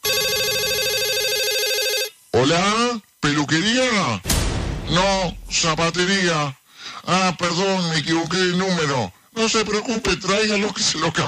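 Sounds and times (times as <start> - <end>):
telephone ringing with an electronic warble: 0.0 - 2.2
speech: 2.4 - 11.2.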